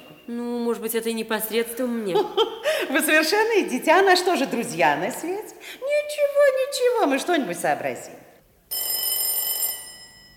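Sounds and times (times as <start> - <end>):
speech: 0.3 - 8.2
metallic doorbell rung from the street door: 8.7 - 10.3.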